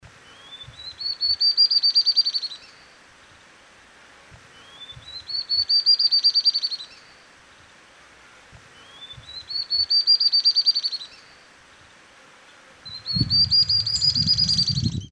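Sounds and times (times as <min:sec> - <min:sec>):
garrincha chorona singing: 0:00.2 - 0:02.9, 0:04.5 - 0:07.2, 0:08.7 - 0:11.4, 0:12.9 - 0:15.1.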